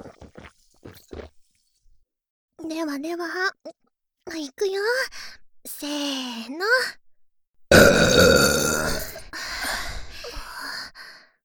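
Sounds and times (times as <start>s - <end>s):
speech: 2.7s - 3.6s, 4.4s - 7.0s
five people burping at the same time: 7.7s - 9.3s.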